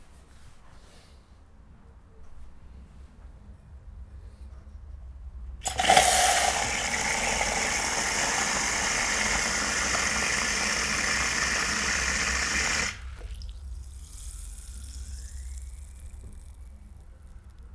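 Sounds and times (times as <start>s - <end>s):
soda water fizzing: 5.6s - 17.6s.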